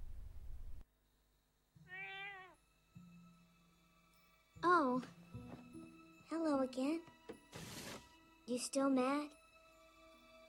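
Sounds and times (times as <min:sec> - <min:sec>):
cat meowing outside a window: 0:01.8 - 0:02.6
speech: 0:04.9 - 0:05.2, 0:06.3 - 0:07.1, 0:08.5 - 0:09.4.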